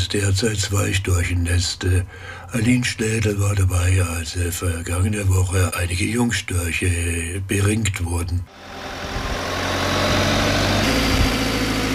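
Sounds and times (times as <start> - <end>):
speech: 0.1 - 9.3
aerial lift truck engine running with a low rumble: 8.5 - 11.9.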